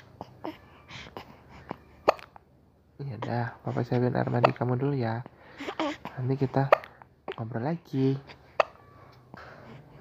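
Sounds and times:
baby hiccuping: 0:00.0 - 0:02.5, 0:03.2 - 0:04.9, 0:05.5 - 0:07.6, 0:08.2 - 0:09.8
speech: 0:03.0 - 0:06.8, 0:07.4 - 0:08.4.

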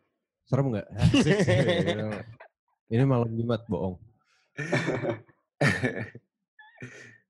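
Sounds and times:
speech: 0:00.5 - 0:07.2
laughter: 0:00.9 - 0:02.3, 0:04.6 - 0:06.2, 0:06.8 - 0:07.1
heavy breathy exhalations: 0:06.8 - 0:07.1.

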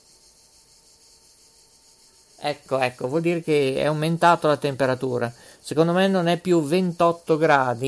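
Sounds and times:
cicadas buzzing: 0:00.0 - 0:07.8
speech: 0:02.4 - 0:07.8.

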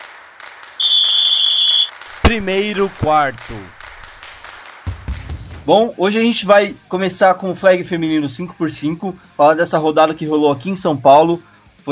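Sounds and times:
high whistle-like tone of a podcast intro jingle: 0:00.8 - 0:02.0
rhythmic broadband pulses of a podcast intro jingle: 0:00.8 - 0:04.5
speech: 0:02.3 - 0:03.8, 0:05.6 - 0:11.9.

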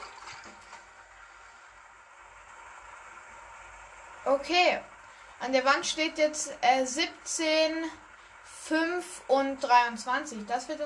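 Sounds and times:
water sloshing as a video game character wades through it: 0:00.0 - 0:01.2
speech: 0:04.2 - 0:08.0, 0:08.7 - 0:10.8.

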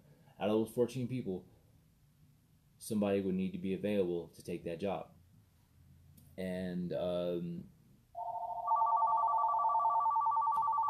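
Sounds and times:
speech: 0:00.4 - 0:01.6, 0:02.8 - 0:05.2, 0:06.4 - 0:07.7
telephone ringing: 0:08.2 - 0:10.8.

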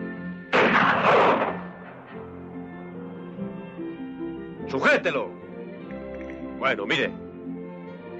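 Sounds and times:
rifle gunshot: 0:00.5 - 0:02.2
speech: 0:04.7 - 0:05.4, 0:06.6 - 0:07.2.

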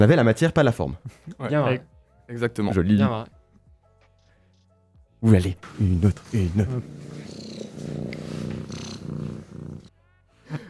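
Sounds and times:
speech: 0:00.0 - 0:03.4, 0:05.2 - 0:08.2
small cat purring on a lap: 0:06.2 - 0:09.9.

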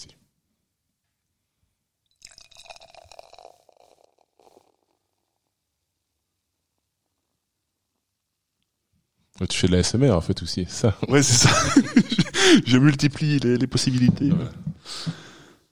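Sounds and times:
quiet fizzing of beer foam: 0:02.1 - 0:05.0
beer pouring into a glass and building a foamy head: 0:02.1 - 0:05.4
speech: 0:09.4 - 0:15.2
laughter: 0:11.1 - 0:12.8.

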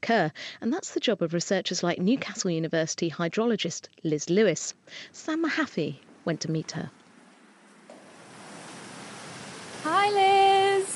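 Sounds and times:
speech: 0:00.0 - 0:07.0, 0:09.8 - 0:10.5
water gushing into a big open-top channel in a hydraulics lab: 0:07.9 - 0:10.9.

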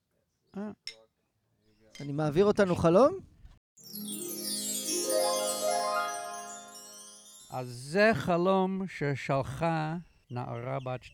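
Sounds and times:
speech: 0:02.0 - 0:03.3, 0:07.5 - 0:11.1
voice mimicking glasses clinking in a toast: 0:03.8 - 0:07.8.

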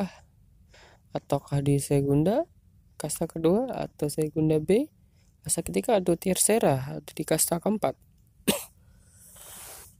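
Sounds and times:
speech: 0:01.2 - 0:08.6
sharp cough: 0:08.4 - 0:08.8
soft breathy exhale: 0:08.8 - 0:09.9.

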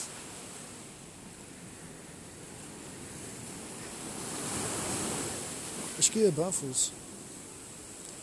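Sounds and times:
waves washing onto a damp beach near small grottoes: 0:00.0 - 0:08.2
speech: 0:06.0 - 0:07.1.

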